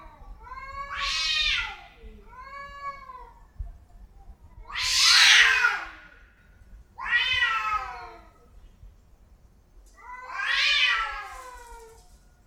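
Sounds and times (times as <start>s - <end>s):
domestic cat in heat yowling with long drawn-out wails: 0.5s - 3.1s, 4.7s - 6.1s, 7.0s - 8.3s, 10.0s - 12.1s.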